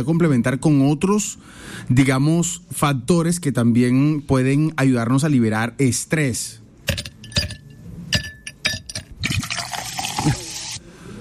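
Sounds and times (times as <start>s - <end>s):
speech: 0.0s - 7.1s
ice clinking in a glass: 6.9s - 10.4s
drink poured into a glass with ice: 9.2s - 10.8s.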